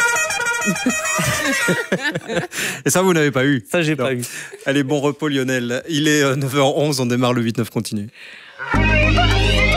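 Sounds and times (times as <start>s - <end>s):
car horn honking: 0.0s - 2.0s
laughter: 0.6s - 2.8s
speech: 0.7s - 9.6s.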